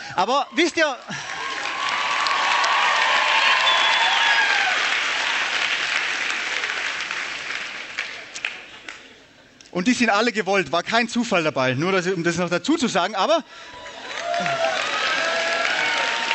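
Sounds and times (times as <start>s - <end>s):
speech: 0.2s - 1.2s, 9.8s - 13.8s
people cheering: 0.3s - 8.6s, 13.7s - 16.3s
large audience applause: 1.0s - 9.1s, 13.8s - 16.3s
whistles: 3.5s - 4.5s.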